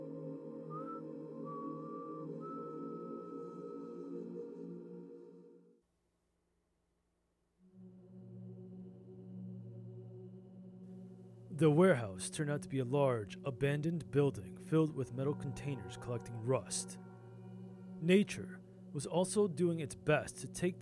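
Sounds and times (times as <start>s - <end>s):
dense droning musical backdrop: 0.0s - 5.6s, 7.7s - 20.8s
man whistling a slow classical nocturne melody: 0.6s - 4.7s
speech: 11.6s - 17.1s, 18.0s - 20.8s.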